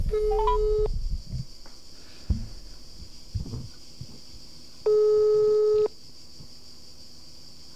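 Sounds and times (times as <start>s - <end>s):
telephone ringback tone while calling someone: 0.2s - 0.9s, 4.9s - 5.9s.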